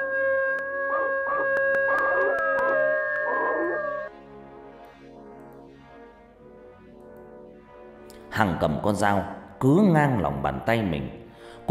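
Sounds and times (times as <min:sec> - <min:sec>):
steady tonal drone: 0:00.0 - 0:08.2
dog-like zombie creature howling eerily: 0:00.7 - 0:04.1
speech: 0:08.4 - 0:11.6.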